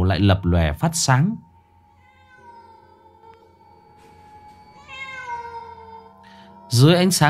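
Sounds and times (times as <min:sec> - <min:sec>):
speech: 0:00.1 - 0:01.5, 0:06.7 - 0:07.2
black cat meowing: 0:01.9 - 0:03.7, 0:04.8 - 0:06.2.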